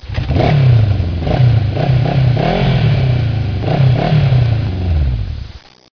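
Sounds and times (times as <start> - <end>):
motorcycles: 0.0 - 5.5.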